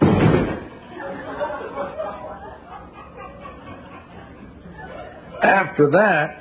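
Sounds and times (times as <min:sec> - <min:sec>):
door slamming in a house: 0:00.0 - 0:00.7
laughter: 0:00.7 - 0:05.8
speech: 0:05.4 - 0:06.3.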